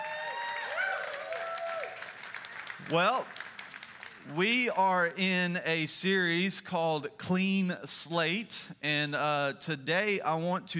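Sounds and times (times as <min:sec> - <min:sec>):
large church audience cheering and whooping: 0:00.0 - 0:02.4
large church audience applauding: 0:00.0 - 0:04.3
speech: 0:02.8 - 0:03.4, 0:04.2 - 0:10.7.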